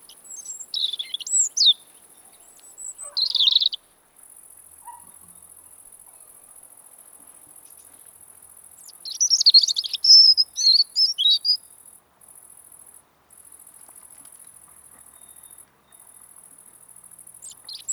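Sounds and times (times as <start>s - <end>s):
European robin Erithacus rubecula singing in autumn: 0.0s - 3.8s, 8.8s - 11.6s, 17.4s - 17.9s.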